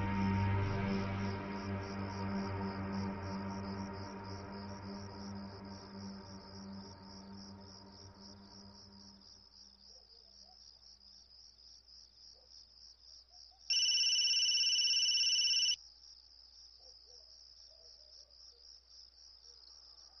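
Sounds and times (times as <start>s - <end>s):
pulsing chirp of crickets: 0.1s - 20.1s
mobile phone ringing with an electronic tone: 13.7s - 15.8s.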